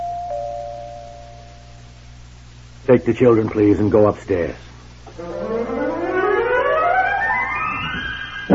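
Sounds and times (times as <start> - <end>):
doorbell ringing with a clear sustained chime: 0.0 - 1.4
faint low hum: 0.0 - 8.5
speech: 2.9 - 5.4.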